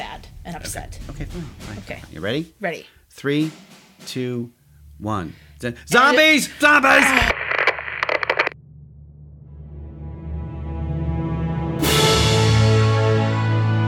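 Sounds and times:
speech: 0.5s - 7.4s
instrumental theme music: 9.5s - 13.8s.

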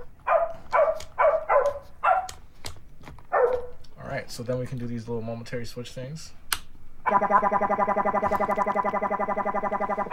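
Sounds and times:
circuit-bent toy piano electronic dog bark: 0.3s - 2.4s, 7.0s - 10.1s
speech: 4.3s - 6.4s, 7.1s - 10.1s.

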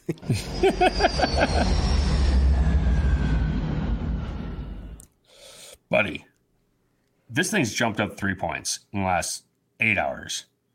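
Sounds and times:
laughter: 0.0s - 1.8s
speech: 0.1s - 2.1s, 5.9s - 6.3s, 7.3s - 10.5s
jet plane roaring overhead: 0.3s - 5.1s.

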